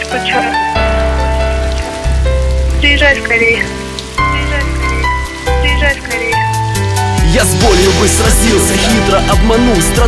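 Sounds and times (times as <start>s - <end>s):
steady rain pattering on a surface: 0.0s - 10.0s
speech: 0.1s - 0.7s, 2.8s - 3.8s, 7.4s - 10.0s
melodic voice-like phrase: 2.8s - 6.5s, 7.2s - 10.0s.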